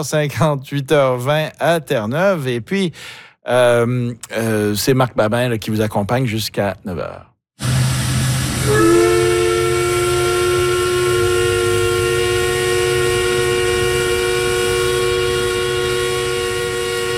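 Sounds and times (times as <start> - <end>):
speech: 0.0 - 7.7
low industrial rumble: 7.6 - 17.1
paper mill steam whistle blasting a steady chord: 7.6 - 17.1.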